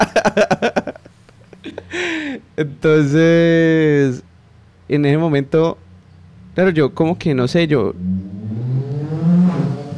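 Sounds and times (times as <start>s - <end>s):
speech: 0.0s - 0.8s, 2.6s - 4.2s, 4.9s - 5.8s, 6.6s - 8.2s
laughter: 0.0s - 2.3s
motorcycle engine revving outside: 7.8s - 9.9s.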